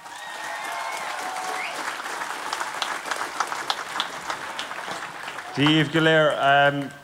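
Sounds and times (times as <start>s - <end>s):
large crowd in Tralee applauding: 0.0s - 6.9s
crowd whistles: 1.5s - 1.9s
speech: 5.6s - 7.0s.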